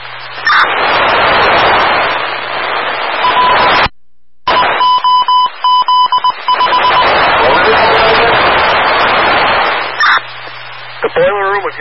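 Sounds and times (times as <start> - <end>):
radio transmission static: 0.0 - 3.9, 4.5 - 11.7
audible alarm beeping from a boiler room: 3.2 - 3.9, 4.5 - 7.6.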